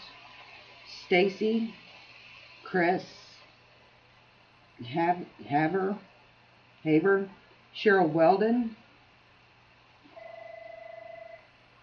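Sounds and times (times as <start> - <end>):
speech: 1.1 - 1.8, 2.7 - 3.2, 4.8 - 6.1, 6.8 - 8.8
telephone ringing with a warbling trill: 10.1 - 11.5.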